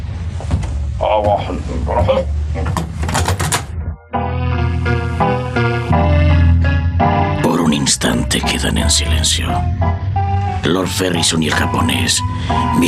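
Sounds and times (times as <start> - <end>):
door creaking: 0.5 - 4.0
speech: 1.0 - 2.8, 7.9 - 10.0, 10.6 - 12.8
door latch clicking and rattling: 2.8 - 3.7
orchestral music: 4.1 - 12.8.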